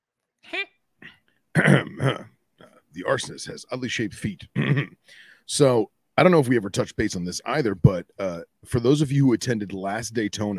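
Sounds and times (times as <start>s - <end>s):
person clearing throat: 1.0s - 2.8s, 4.5s - 5.0s
speech: 3.0s - 10.5s.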